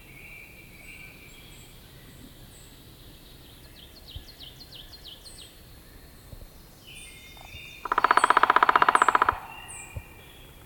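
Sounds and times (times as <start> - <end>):
Downy Woodpecker giving a rapid run of sharp notes: 7.3 - 10.6.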